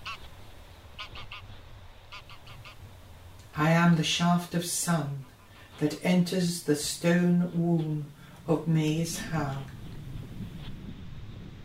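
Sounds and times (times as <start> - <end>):
skein of migrating geese honking: 0.0 - 3.3
steady low rumble: 0.0 - 11.6
speech: 3.6 - 9.8.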